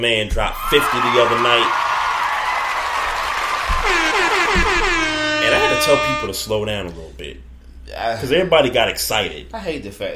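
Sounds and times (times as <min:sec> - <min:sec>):
speech: 0:00.0 - 0:01.9, 0:05.5 - 0:10.1
round of applause sound effect: 0:00.6 - 0:04.6
short falling whistle tones: 0:02.0 - 0:06.4.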